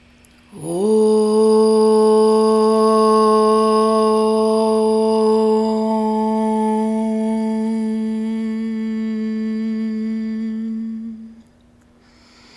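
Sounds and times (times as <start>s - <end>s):
single voice chanting a long om: 0.0s - 11.6s
inhale through the nose: 12.0s - 12.5s.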